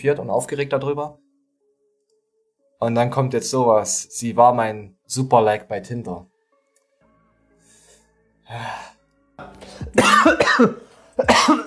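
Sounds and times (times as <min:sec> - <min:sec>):
speech: 0:00.0 - 0:01.2, 0:02.8 - 0:06.3, 0:08.5 - 0:08.9, 0:09.8 - 0:11.6
breathy exhale: 0:07.6 - 0:09.0
person coughing in a rough fit: 0:10.0 - 0:11.6.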